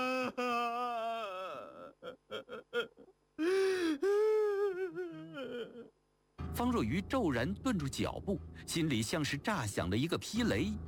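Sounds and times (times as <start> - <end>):
man sobbing loudly with wavering wails and choked gasps: 0.0 - 6.0
speech: 6.6 - 10.8.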